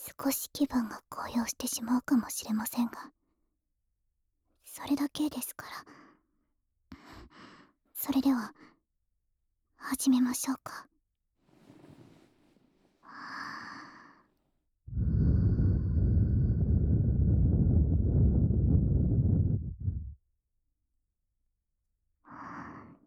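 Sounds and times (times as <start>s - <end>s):
speech: 0.2s - 3.2s, 4.8s - 6.0s, 8.0s - 8.7s, 9.8s - 10.9s
long breath blown into the microphone: 14.9s - 20.2s.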